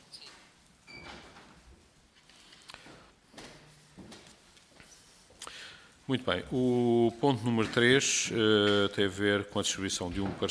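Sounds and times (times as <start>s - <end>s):
door swinging shut during a meeting: 0.1s - 1.6s
speech: 6.1s - 10.4s.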